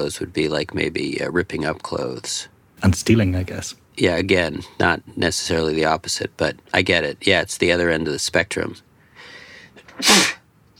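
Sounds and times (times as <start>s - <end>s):
speech: 0.0s - 8.9s, 10.0s - 10.3s
breathy intake before a sneeze: 9.1s - 10.4s
person sneezing: 9.8s - 10.5s.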